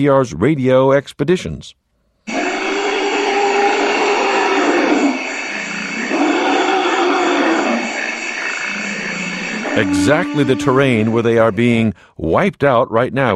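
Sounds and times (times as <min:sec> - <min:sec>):
speech: 0:00.0 - 0:01.8, 0:09.8 - 0:13.3
forest elephants in Central Africa giving rumbling roars: 0:02.3 - 0:11.5.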